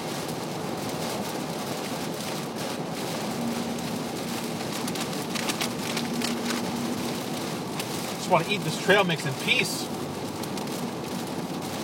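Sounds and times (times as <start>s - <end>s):
steady rain falling: 0.0s - 11.8s
speech: 8.3s - 10.0s.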